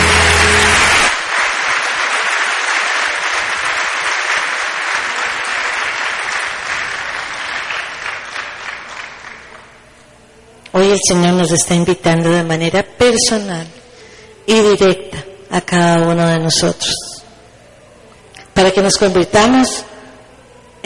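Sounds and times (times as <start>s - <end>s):
crowd applauding: 0.0s - 9.8s
speech: 10.9s - 13.8s, 14.5s - 17.1s, 18.6s - 19.9s.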